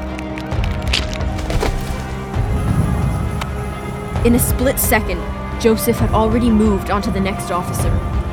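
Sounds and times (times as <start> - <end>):
body contorting with cracking and splintering: 0.9 - 3.0
low crunching rumble: 1.3 - 5.4
speech: 4.2 - 8.2.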